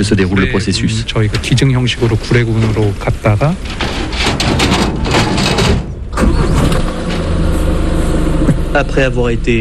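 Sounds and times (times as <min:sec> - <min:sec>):
speech: 0:00.0 - 0:05.0, 0:08.8 - 0:09.5
indistinct voices: 0:00.0 - 0:09.5
truck engine starting and idling: 0:03.2 - 0:09.5.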